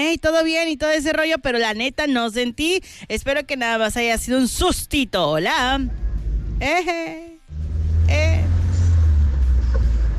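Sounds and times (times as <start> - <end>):
speech: 0.0 - 6.0, 6.6 - 7.3
old Volkswagen Beetle engine revving and idling: 5.9 - 6.7, 7.5 - 10.1.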